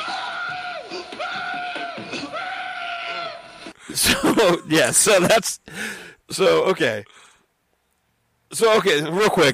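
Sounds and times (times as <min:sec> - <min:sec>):
man screaming while holding up an opponent in a wrestling match: 0:00.0 - 0:04.5
speech: 0:03.9 - 0:07.2, 0:08.5 - 0:09.5.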